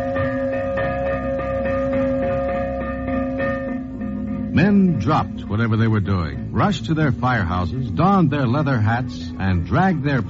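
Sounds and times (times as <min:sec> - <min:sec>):
fire bell of old volunteer fire companies ringing: 0:00.0 - 0:07.4
speech: 0:04.6 - 0:10.2.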